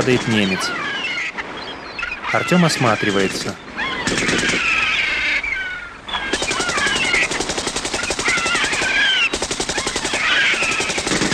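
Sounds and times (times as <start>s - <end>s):
speech: 0.0s - 0.9s, 2.3s - 4.8s
continuous droning noise: 0.0s - 11.3s
automatic gunfire bursts from retreating German soldiers firing back: 4.0s - 4.6s, 6.3s - 11.3s.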